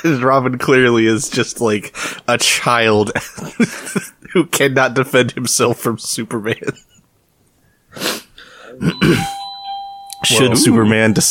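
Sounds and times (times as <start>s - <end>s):
speech: 0.0s - 6.9s, 8.8s - 9.4s, 10.2s - 11.2s
person clearing throat: 8.7s - 9.4s
doorbell chiming: 8.9s - 11.2s
rough vocal noises: 10.2s - 11.2s.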